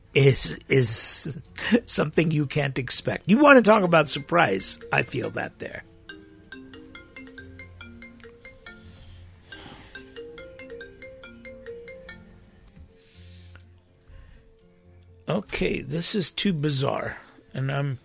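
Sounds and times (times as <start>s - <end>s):
speech: 0.2s - 5.9s, 15.3s - 18.0s
phone electronic ringtone for an incoming call: 4.2s - 12.7s.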